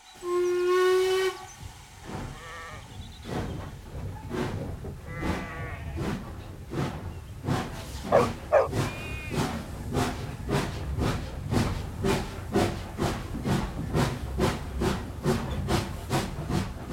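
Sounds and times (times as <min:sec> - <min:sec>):
steam locomotive whistle: 0:00.0 - 0:03.1
steam locomotive puffing with rhythmic chuffs: 0:00.0 - 0:16.9.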